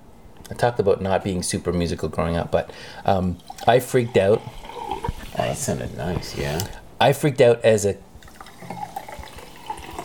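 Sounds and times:
speech: 0:00.5 - 0:08.8
fizzy water pouring into a glass: 0:03.0 - 0:06.8, 0:08.2 - 0:10.0.

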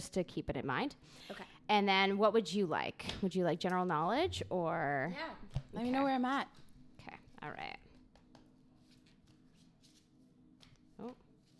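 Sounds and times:
speech: 0:00.0 - 0:07.8, 0:11.0 - 0:11.2
deck of cards shuffled in soft papery riffles: 0:08.0 - 0:11.5.

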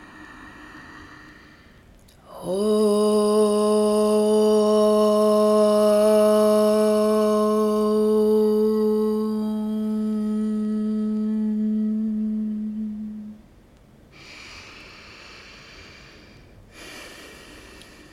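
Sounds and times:
single voice chanting a sustained om: 0:00.0 - 0:13.5
speech: 0:02.4 - 0:02.7.

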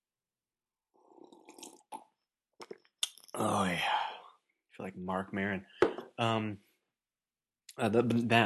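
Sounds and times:
gulp: 0:01.0 - 0:03.9
speech: 0:03.4 - 0:04.1, 0:04.8 - 0:06.7, 0:07.8 - 0:08.4.

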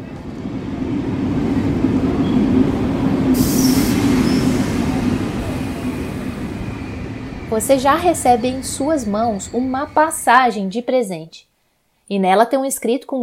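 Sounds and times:
train rumbling at a railway station: 0:00.0 - 0:10.9
brief sharp high-pitched squeal or hiss: 0:00.2 - 0:10.6
speech: 0:07.6 - 0:11.5, 0:12.1 - 0:13.2.

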